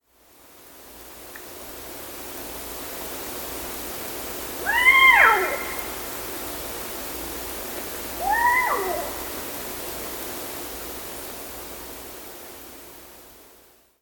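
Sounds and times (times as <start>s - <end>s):
Eastern Screech Owl Megascops asio calling: 4.6s - 6.4s, 8.2s - 9.5s.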